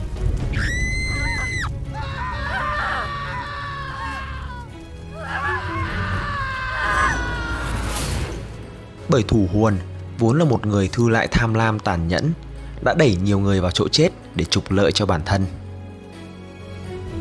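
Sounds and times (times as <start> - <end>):
anguished screams and wails from several tormented people: 0.5 - 8.3
sharp shriek: 6.6 - 8.8
speech: 9.1 - 15.6.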